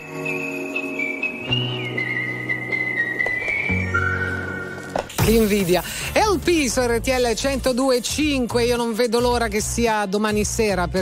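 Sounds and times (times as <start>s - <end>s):
steady low musical backing: 0.0s - 11.0s
person whistling a high clear tune: 0.1s - 4.8s
speech: 5.3s - 11.0s.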